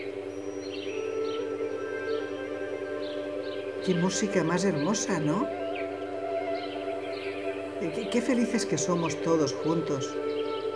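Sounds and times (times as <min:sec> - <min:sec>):
small birds chirping: 0:00.0 - 0:10.7
speech: 0:03.9 - 0:05.6, 0:07.8 - 0:10.3.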